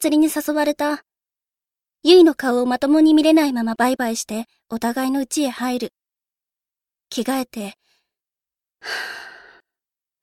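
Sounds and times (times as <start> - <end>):
speech: 0.0 - 1.1, 2.0 - 6.0, 7.1 - 7.8, 8.8 - 9.3
deep breath: 8.8 - 10.2.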